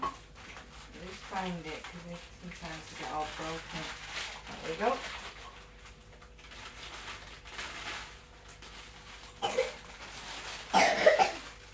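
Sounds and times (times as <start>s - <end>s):
speech: 1.4s - 5.3s
short raspy coughs: 9.4s - 9.8s, 10.7s - 11.5s.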